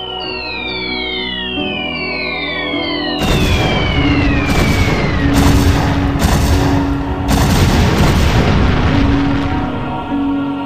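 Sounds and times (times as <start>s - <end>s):
whistling firework rockets: 0.0s - 10.5s
fireworks banging and crackling: 2.2s - 10.4s.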